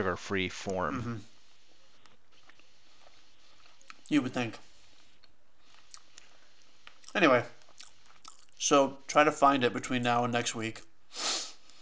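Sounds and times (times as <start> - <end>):
speech: 0.0 - 1.3, 4.1 - 4.7, 7.1 - 7.6, 8.6 - 11.3
chewing a bite of food: 2.0 - 4.2, 4.9 - 8.6
wet mouth clicks: 3.6 - 4.1, 5.2 - 8.6.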